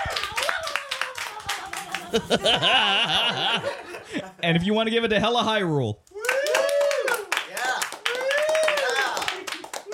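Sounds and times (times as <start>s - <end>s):
small live studio audience cheering and whooping: 0.0s - 3.4s, 6.2s - 9.9s
laughter: 0.3s - 4.4s
speech: 2.1s - 6.0s.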